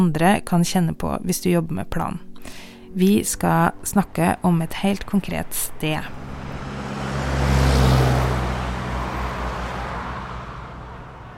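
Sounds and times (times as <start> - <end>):
speech: 0.0 - 6.2
road traffic rumbling in a busy urban district: 2.5 - 11.3
car engine passing: 3.0 - 11.3.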